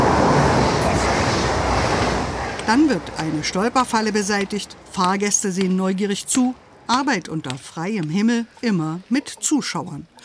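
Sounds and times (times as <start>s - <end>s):
ICE high-speed train rushing past at a railway station: 0.0s - 6.9s
speech: 2.7s - 10.2s.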